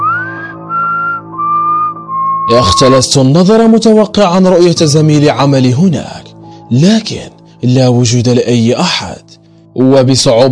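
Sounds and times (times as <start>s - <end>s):
person whistling in a corridor leading to an elevator: 0.0s - 2.6s
speech: 2.5s - 9.2s, 9.8s - 10.5s.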